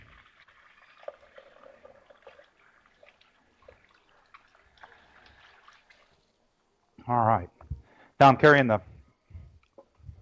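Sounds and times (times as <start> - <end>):
water running from a tap while rinsing hands: 0.0 - 6.3
speech: 7.1 - 7.5, 8.2 - 8.9.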